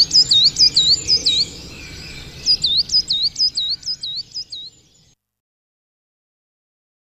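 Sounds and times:
coal tit song: 0.0 - 5.2.

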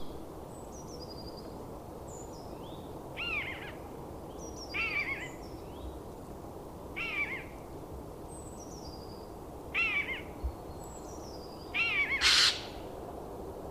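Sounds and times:
steady background hiss: 0.0 - 13.7
Eurasian jay harsh downward-slurred calls: 12.2 - 12.7.

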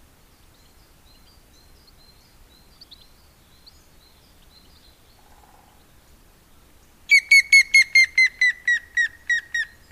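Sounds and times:
grey-headed woodpecker clear whistled descending notes: 7.1 - 9.9.

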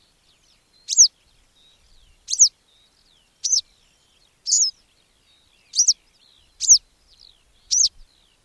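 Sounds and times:
Western yellow wagtail giving thin high falling single-note calls: 0.8 - 1.1, 2.3 - 2.5, 4.4 - 4.8, 5.7 - 6.8, 7.6 - 8.0.

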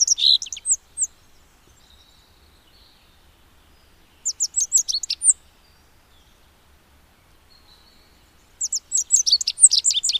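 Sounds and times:
rock bunting singing: 0.0 - 10.1.

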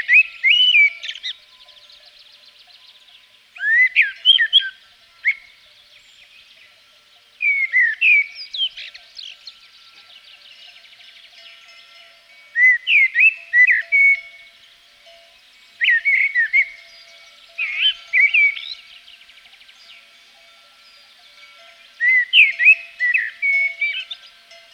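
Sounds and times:
common blackbird song in Provence: 0.0 - 24.7.

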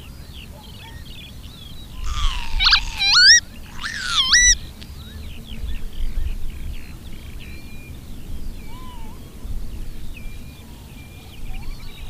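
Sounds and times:
northern lapwing calls: 2.0 - 4.7.

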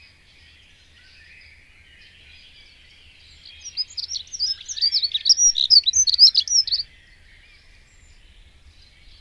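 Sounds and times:
dunnock singing a jumbled warble: 3.6 - 6.8.

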